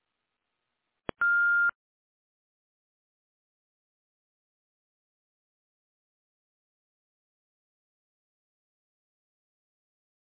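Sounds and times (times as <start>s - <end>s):
voicemail recording beep: 1.2s - 1.8s.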